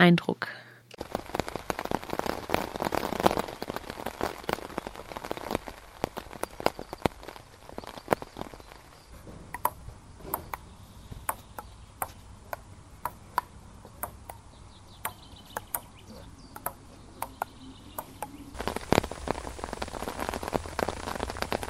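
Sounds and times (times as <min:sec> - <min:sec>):
speech: 0:00.0 - 0:01.2
steady rain pattering on a surface at Lake Constance: 0:01.0 - 0:09.8, 0:16.6 - 0:21.6
table tennis ball bouncing and struck at a radio camp at Lake Constance: 0:09.5 - 0:10.6, 0:11.2 - 0:14.4, 0:15.1 - 0:15.9, 0:16.6 - 0:18.4.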